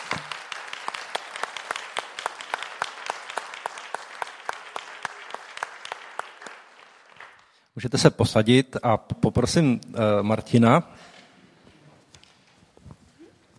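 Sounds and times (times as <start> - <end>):
crowd applauding to welcome a guest: 0.0 - 7.8
speech: 7.8 - 11.1.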